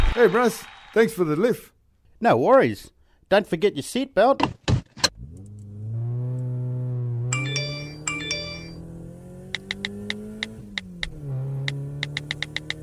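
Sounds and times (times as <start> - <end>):
speech: 0.1 - 4.6
car engine humming: 5.1 - 12.7
mobile phone ringing in electronic bursts in a car: 7.3 - 8.8
sharp evenly spaced clicks: 9.5 - 12.7.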